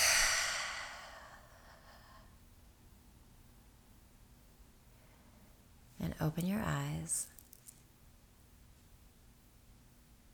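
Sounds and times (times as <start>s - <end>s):
deep breath exhaled through the mouth during a guided meditation: 0.0s - 2.3s
speech: 6.2s - 7.4s.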